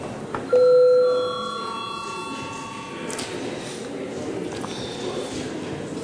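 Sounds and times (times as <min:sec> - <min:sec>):
electronic parliament bell tone in a large hall before deputies' registration: 0:00.5 - 0:03.1.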